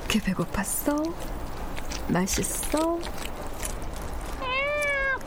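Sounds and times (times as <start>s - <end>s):
speech: 0.1s - 1.4s, 2.1s - 3.3s
cat meowing: 4.4s - 5.2s.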